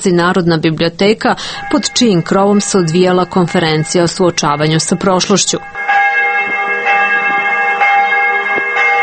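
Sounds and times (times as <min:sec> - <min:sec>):
speech: 0:00.0 - 0:06.0
church bells ringing from a large cathedral: 0:01.2 - 0:09.0.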